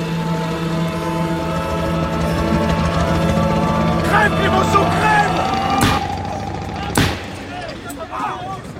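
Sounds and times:
steady rumbling background: 0.0s - 8.7s
gunshot fired at a limousine: 5.8s - 6.1s, 7.0s - 7.5s.

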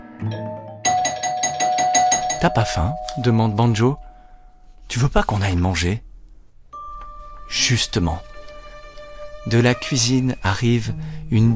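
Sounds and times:
speech: 0.2s - 0.6s, 2.4s - 4.1s, 4.9s - 6.1s, 7.5s - 8.3s, 9.4s - 11.5s
doorbell ringing with soft chime and electric buzzing ring: 0.3s - 4.7s, 6.8s - 9.0s.

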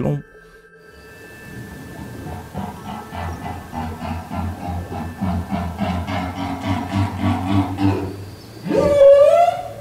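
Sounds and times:
whale song from Madagascar: 0.0s - 9.8s.

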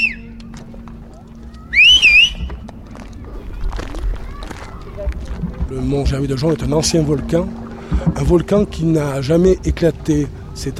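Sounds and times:
loud wavering two-finger-style whistle calling someone over: 0.0s - 0.3s, 1.7s - 2.6s
outdoor noise: 0.0s - 10.7s
short faint whistle: 1.7s - 2.5s
speech: 5.7s - 10.7s.

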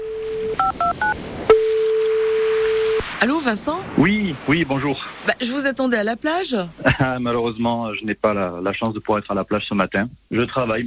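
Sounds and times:
long continuous phone tone: 0.0s - 3.4s
speech: 3.2s - 10.8s
laughter: 6.8s - 7.3s.

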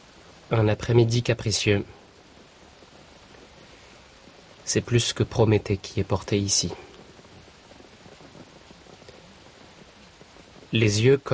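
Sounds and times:
steady rain pattering onto pavement: 0.0s - 11.3s
speech: 0.5s - 2.0s, 4.7s - 6.9s, 10.7s - 11.3s.

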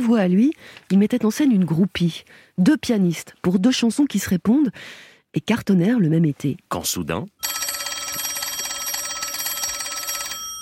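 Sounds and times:
speech: 0.0s - 7.6s
telephone bell ringing with a metallic trill: 7.4s - 10.5s.

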